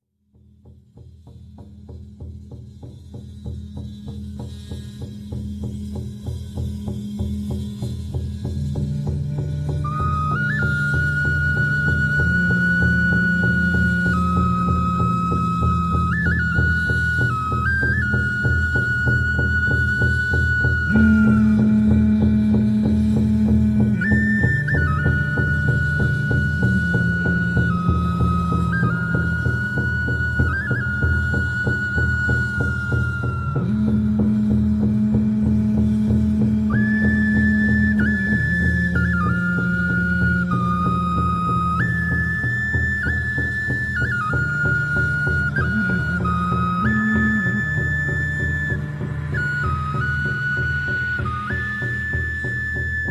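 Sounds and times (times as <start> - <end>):
shamanic drum music: 0.3 - 53.1.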